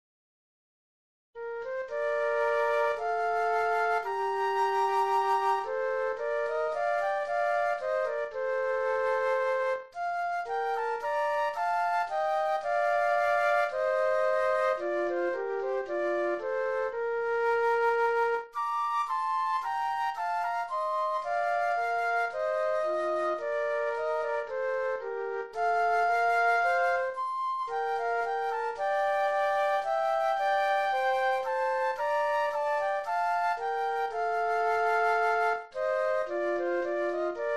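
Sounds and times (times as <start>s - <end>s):
classical march flute duet: 1.4s - 37.5s.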